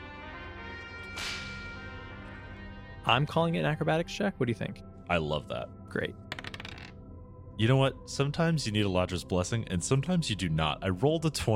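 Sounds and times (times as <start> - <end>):
droning musical background: 0.0 - 11.5
whip crack: 1.2 - 1.6
speech: 3.1 - 6.2, 7.6 - 11.5.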